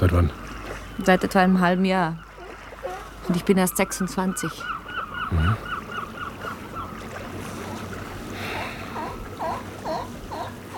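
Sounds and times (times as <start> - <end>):
speech: 0.0 - 0.4, 1.0 - 2.3, 3.2 - 5.7
seashore ambience at tidal flats at low tide: 0.0 - 10.7.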